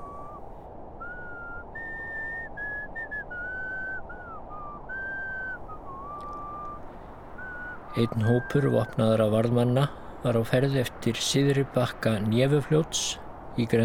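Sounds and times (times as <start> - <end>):
person whistling a broken version of a folk song on winter streets: 0.0 - 6.8, 7.4 - 9.0
steady rumble: 0.0 - 13.8
speech: 8.0 - 13.8.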